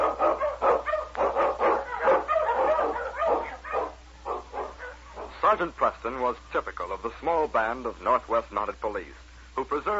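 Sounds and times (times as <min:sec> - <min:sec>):
sled dogs barking in storm and snow: 0:00.0 - 0:05.4
speech: 0:05.5 - 0:09.9.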